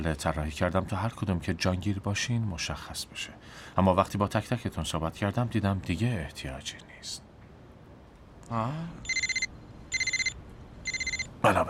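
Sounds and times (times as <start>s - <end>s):
speech: 0.0s - 7.3s, 8.5s - 9.2s, 11.4s - 11.6s
mobile phone ringing with trilling electronic tones: 9.0s - 11.4s.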